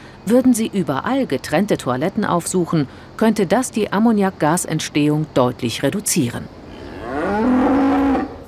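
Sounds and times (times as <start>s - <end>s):
speech: 0.3s - 6.6s
single cow mooing loudly: 6.7s - 8.4s.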